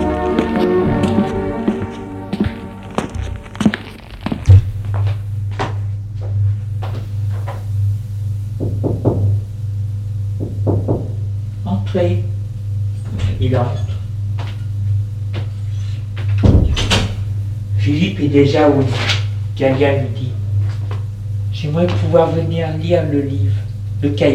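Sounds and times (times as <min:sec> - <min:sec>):
footsteps: 0:00.0 - 0:07.7, 0:20.6 - 0:21.1, 0:21.8 - 0:22.2
low steady hum: 0:00.0 - 0:24.3
knocking on a bedroom door: 0:08.6 - 0:09.4, 0:10.4 - 0:11.2
speech: 0:18.4 - 0:20.4, 0:21.6 - 0:24.3.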